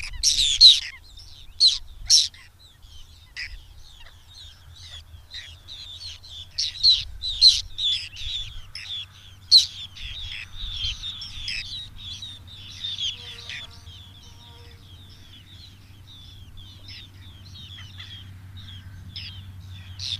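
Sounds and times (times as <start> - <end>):
Whiskered tern uttering harsh scratchy rasping calls: 0.0 - 20.1.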